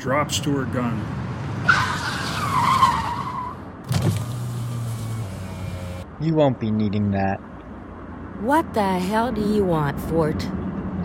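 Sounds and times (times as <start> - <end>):
speech: 0.0 - 1.9, 6.2 - 7.5, 8.4 - 11.0
sports car tires screeching: 0.0 - 6.2
sports car engine idling: 3.9 - 6.0.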